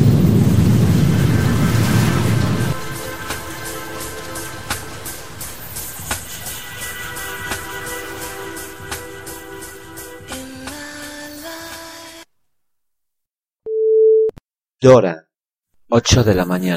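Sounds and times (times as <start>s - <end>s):
dense musical passage: 0.1s - 10.2s
speech: 14.8s - 15.2s, 15.9s - 16.7s.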